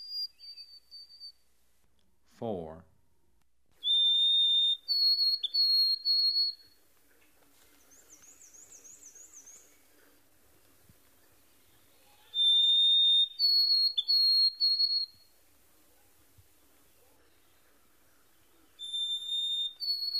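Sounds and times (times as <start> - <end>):
white-throated sparrow whistling pure notes: 0.0 - 1.4, 3.8 - 6.8, 7.8 - 10.0, 11.2 - 20.1
speech: 2.4 - 2.9.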